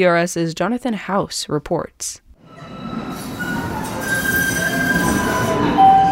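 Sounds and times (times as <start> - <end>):
speech: 0.0 - 2.7
light rail train rumbling along the tracks: 2.4 - 6.1
light rail train wheels squealing: 2.5 - 6.1.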